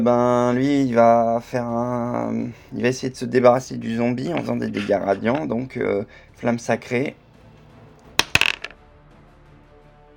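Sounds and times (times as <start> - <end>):
speech: 0.0 - 7.2
dice clattering onto a hard table during a tabletop role-playing game: 8.2 - 8.8.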